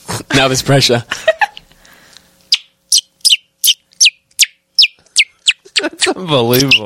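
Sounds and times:
speech: 0.4 - 1.2, 6.2 - 6.8
man imitating a bird call with high-pitched chirps: 2.5 - 6.8.

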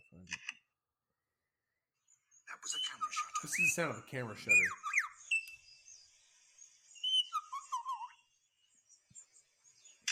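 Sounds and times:
bird call with whistled notes and warbling phrases: 2.5 - 10.1
speech: 2.7 - 4.8.

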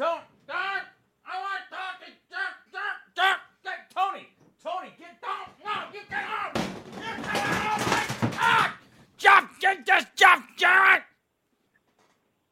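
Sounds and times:
man bellowing and shouting: 0.0 - 11.1
banging on a studio door: 6.1 - 8.8.

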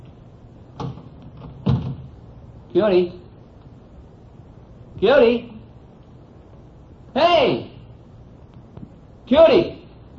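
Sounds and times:
faint room hush: 0.0 - 10.1
door being opened with knocking clunks: 0.8 - 2.1
speech: 2.7 - 3.2, 5.0 - 5.5, 7.2 - 7.7, 9.3 - 9.8.

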